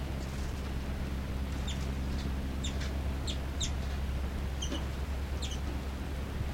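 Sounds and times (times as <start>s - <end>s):
steady low hum: 0.0s - 6.5s
two birds trading short high chirping calls: 1.3s - 5.9s.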